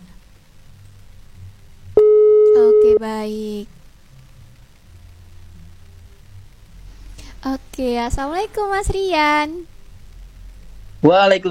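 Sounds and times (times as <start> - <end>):
faint low rumble: 0.0 - 11.4
steady electronic telephone tone: 2.0 - 3.0
speech: 3.0 - 3.8, 7.4 - 9.7, 11.0 - 11.4.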